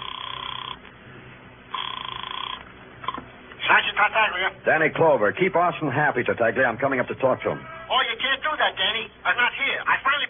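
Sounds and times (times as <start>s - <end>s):
telephone ringing over the line: 0.0s - 0.8s, 1.7s - 3.2s
speech: 3.7s - 10.2s.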